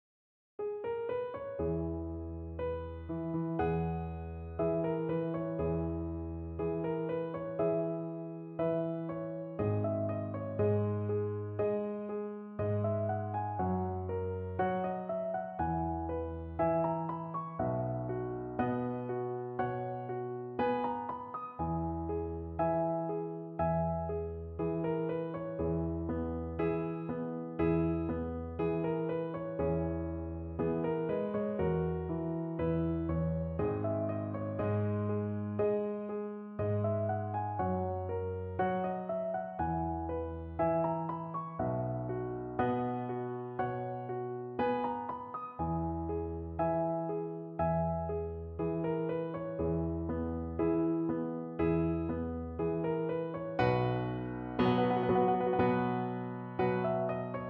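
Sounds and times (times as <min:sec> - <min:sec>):
romantic piano piece: 0:00.6 - 0:57.4.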